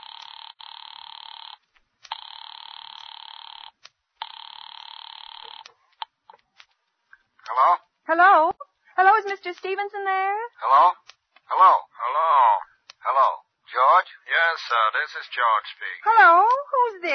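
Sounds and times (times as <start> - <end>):
telephone line ringing in electronic bursts: 0.0 - 5.7
speech: 7.6 - 8.5, 9.2 - 12.6, 14.0 - 17.1.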